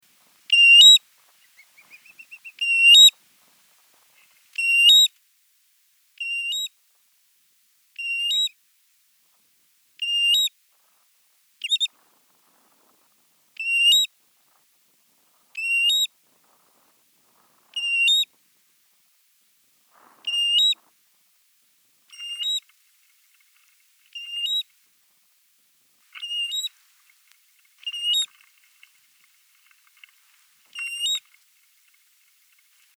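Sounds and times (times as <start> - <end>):
American Golden Plover Pluvialis dominica: 0.1 - 5.2, 6.2 - 6.7, 8.0 - 8.6, 10.0 - 10.6, 11.6 - 14.7, 15.3 - 18.4, 20.0 - 21.0, 22.0 - 25.0, 25.9 - 32.9.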